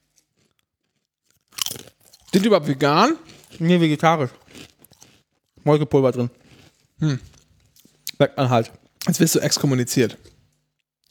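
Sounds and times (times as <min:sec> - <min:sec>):
loud crunching of chips being bitten and chewed: 0:00.1 - 0:05.6, 0:06.2 - 0:08.1
speech: 0:02.3 - 0:04.4, 0:05.6 - 0:06.4, 0:07.0 - 0:07.3, 0:08.2 - 0:10.3.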